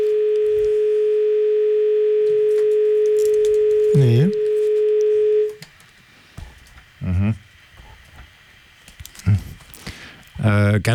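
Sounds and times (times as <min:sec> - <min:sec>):
telephone ringing tone: 0:00.0 - 0:05.6
speech: 0:10.5 - 0:10.9.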